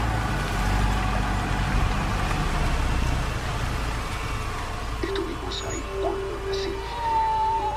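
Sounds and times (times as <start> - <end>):
car engines idling in a traffic jam: 0.0 - 7.7
dense low rumble of traffic in a jam: 0.0 - 7.7.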